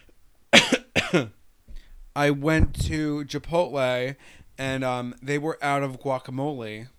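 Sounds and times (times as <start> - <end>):
person coughing harshly: 0.6 - 1.4
speech: 1.1 - 1.4, 2.2 - 6.9.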